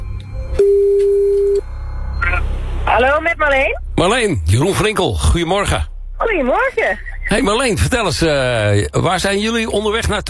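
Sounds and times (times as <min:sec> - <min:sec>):
telephone tone while a call is being placed: 0:00.5 - 0:02.5
speech: 0:03.5 - 0:10.2.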